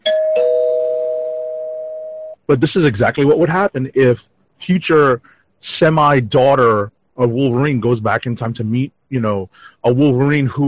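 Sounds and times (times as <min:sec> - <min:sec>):
bell struck and ringing: 0:00.0 - 0:02.4
speech: 0:02.5 - 0:10.6.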